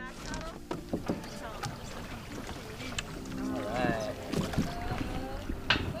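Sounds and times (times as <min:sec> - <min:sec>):
canoe paddles dipping and splashing in water: 0:00.0 - 0:05.9
light wind: 0:00.0 - 0:05.9
voices murmuring: 0:00.0 - 0:05.9.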